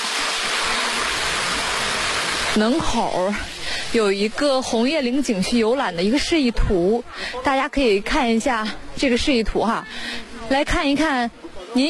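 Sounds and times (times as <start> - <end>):
water flowing from a small rockery waterfall and fountain at a scenic-area entrance: 0.0 - 5.5
speech: 2.6 - 11.8.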